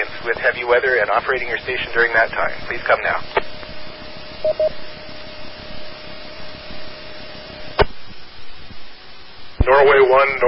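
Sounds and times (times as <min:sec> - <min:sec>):
steady carrier tone from a ham radio repeater: 0:00.0 - 0:09.9
ham radio repeater hiss: 0:00.0 - 0:10.4
speech: 0:00.2 - 0:03.5, 0:04.4 - 0:04.9, 0:09.6 - 0:10.4
ham radio repeater courtesy beeps: 0:04.4 - 0:04.8.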